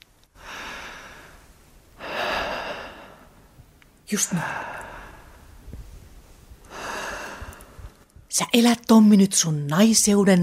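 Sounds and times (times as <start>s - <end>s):
deep breathing: 0.4s - 3.7s, 4.3s - 8.1s
speech: 4.1s - 4.8s, 8.4s - 10.4s.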